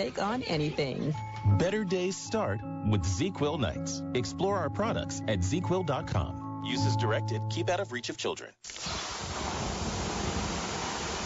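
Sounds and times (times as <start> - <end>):
speech: 0.0 - 9.2
water poured on 800-degree rocks in a sauna: 8.7 - 11.2.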